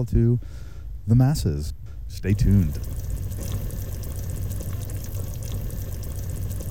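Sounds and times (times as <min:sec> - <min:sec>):
speech: 0:00.0 - 0:03.5
chili bubbling in a pot: 0:02.2 - 0:06.6.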